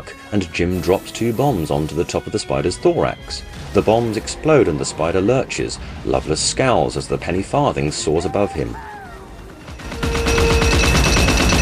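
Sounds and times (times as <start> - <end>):
speech: 0.0 - 9.0
Gatling gun firing from a cockpit platform at a flying bicycle: 9.8 - 11.6.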